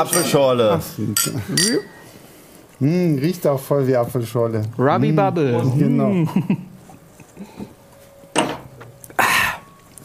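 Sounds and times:
glasses clinking in a toast: 0.0 - 2.0, 8.1 - 9.9
speech: 0.0 - 2.0, 2.8 - 6.7.

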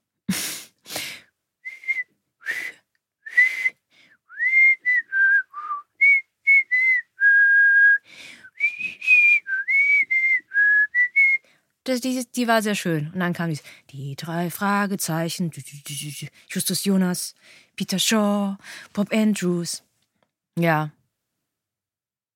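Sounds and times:
person whistling a tune: 1.7 - 11.4
speech: 11.9 - 19.9, 20.6 - 21.0.

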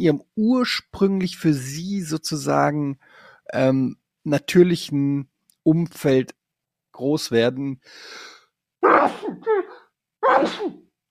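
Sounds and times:
speech: 0.0 - 6.4, 7.0 - 10.8
breathy inhale: 3.0 - 3.5, 7.8 - 8.5
person sneezing: 8.8 - 10.8.

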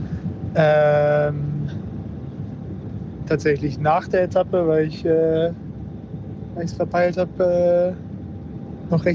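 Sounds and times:
racing team bus engine rumble from inside while moving: 0.0 - 9.1
speech: 0.5 - 1.8, 3.3 - 5.6, 6.6 - 8.0, 8.9 - 9.1.

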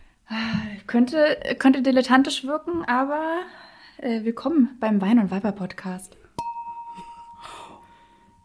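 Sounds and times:
speech: 0.3 - 6.2
wine glasses clinking in a toast: 6.4 - 8.4.

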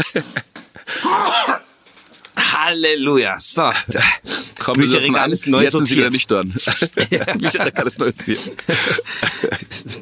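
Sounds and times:
speech: 0.0 - 0.5, 2.7 - 10.0
laughter: 0.0 - 0.9, 4.8 - 10.0
person sneezing: 0.9 - 1.7.

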